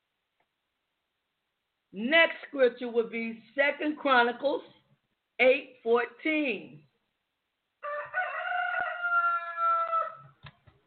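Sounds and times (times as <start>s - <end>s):
speech: 1.9s - 4.8s, 5.4s - 6.8s
rooster crowing: 7.8s - 10.4s.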